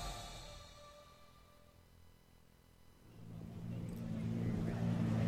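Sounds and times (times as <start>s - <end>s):
rocket cycle engine revving at a racetrack arena: 3.1s - 5.2s.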